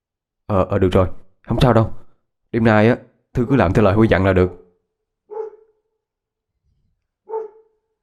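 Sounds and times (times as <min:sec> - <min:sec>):
speech: 0:00.5 - 0:04.6
strange dog barking at night: 0:05.3 - 0:06.0, 0:07.2 - 0:08.0.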